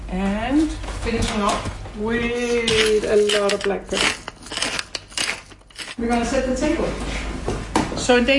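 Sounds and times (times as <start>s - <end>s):
speech: 0.1s - 4.2s, 6.0s - 7.2s, 8.1s - 8.3s
knife clatter against a board or plate: 2.6s - 6.0s.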